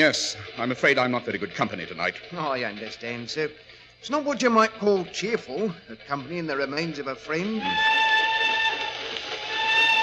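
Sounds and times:
speech: 0:00.0 - 0:08.1
steam train whistle blowing: 0:07.6 - 0:10.0.

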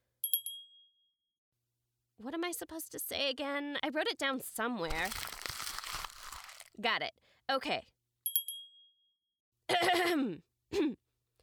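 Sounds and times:
small hand bell ringing in a ritual: 0:00.2 - 0:00.9, 0:08.3 - 0:09.0
speech: 0:02.2 - 0:05.3, 0:06.8 - 0:07.9, 0:09.7 - 0:11.0.

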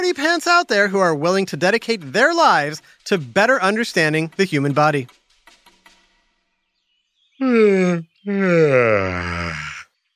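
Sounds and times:
speech: 0:00.1 - 0:05.2, 0:07.4 - 0:10.1
human yawn: 0:07.4 - 0:09.8.

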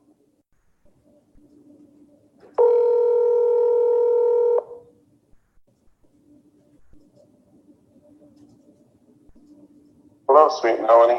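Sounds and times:
quiet phone line noise: 0:00.0 - 0:11.1
ringback tone of an outgoing phone call: 0:02.6 - 0:04.9
speech: 0:10.5 - 0:11.1.

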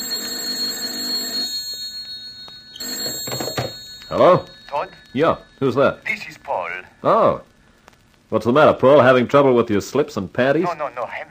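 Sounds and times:
telephone ringing with a shrill buzz: 0:00.0 - 0:06.8
speech: 0:04.1 - 0:07.5, 0:08.3 - 0:11.2.

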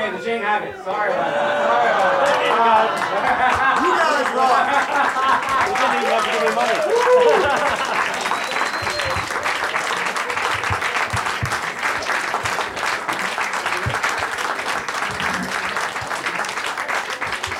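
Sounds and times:
speech: 0:00.3 - 0:07.9
laughter: 0:00.9 - 0:17.5
applause from a large audience: 0:01.2 - 0:17.5.

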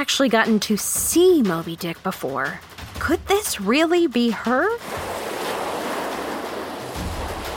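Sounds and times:
speech: 0:00.0 - 0:05.0
gusting wind: 0:04.8 - 0:07.5
heavy waves crashing against a ship's hull: 0:04.8 - 0:07.5.

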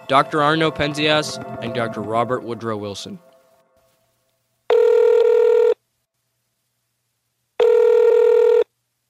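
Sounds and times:
speech: 0:00.1 - 0:03.3
electronic ringback tones from a telephone line: 0:04.7 - 0:05.8, 0:07.6 - 0:08.7.

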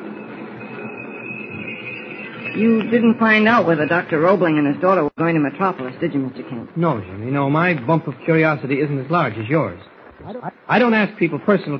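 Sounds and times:
train slowing down coming into a station: 0:00.0 - 0:05.0
faint high whine: 0:00.0 - 0:11.7
speech: 0:02.6 - 0:11.7.

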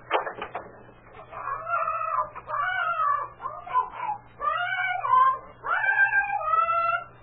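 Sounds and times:
faint steady low hum: 0:00.0 - 0:07.2
parrot in a barn squawking and chattering: 0:01.2 - 0:07.2.

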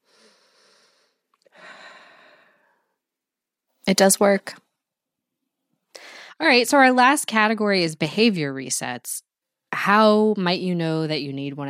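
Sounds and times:
breathing exercise with two back-to-back inhales and a long exhale: 0:00.0 - 0:02.9
speech: 0:03.9 - 0:04.6, 0:06.4 - 0:11.6.

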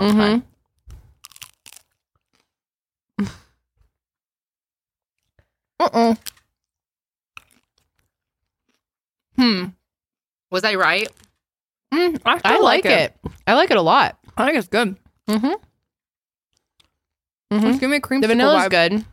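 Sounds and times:
speech: 0:00.0 - 0:00.5, 0:03.2 - 0:03.4, 0:05.8 - 0:06.3, 0:09.4 - 0:09.8, 0:10.5 - 0:11.3, 0:11.9 - 0:15.7, 0:17.5 - 0:19.1
brittle crunchy food being bitten and chewed: 0:00.8 - 0:02.6, 0:06.2 - 0:09.0, 0:11.0 - 0:11.4, 0:16.5 - 0:18.6.

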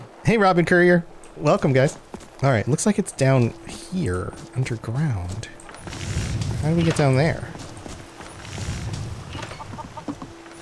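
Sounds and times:
speech: 0:00.3 - 0:07.5
chickens clucking: 0:09.3 - 0:10.3.

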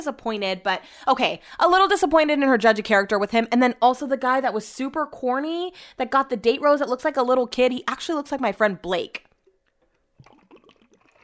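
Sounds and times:
speech: 0:00.0 - 0:09.2
person gulping and swallowing water: 0:09.2 - 0:11.2.

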